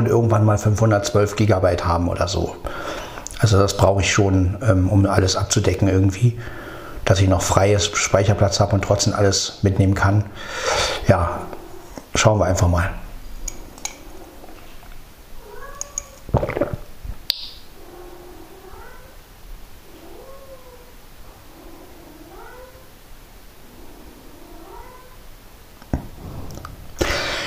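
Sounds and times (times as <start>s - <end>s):
speech: 0.1s - 11.5s, 12.2s - 13.0s
cats meowing: 13.8s - 16.4s, 17.7s - 19.2s, 19.8s - 23.0s, 23.6s - 25.3s.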